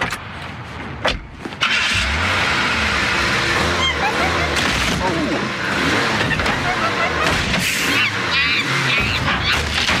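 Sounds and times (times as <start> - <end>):
cars crashing into one another: 1.5 - 9.9
laughter: 3.7 - 9.8
screeching: 7.6 - 9.9.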